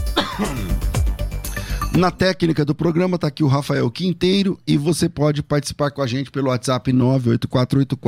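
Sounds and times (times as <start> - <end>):
person clearing throat: 0.1 - 0.9
person coughing: 0.1 - 0.9
speech: 0.4 - 0.7, 2.0 - 8.0.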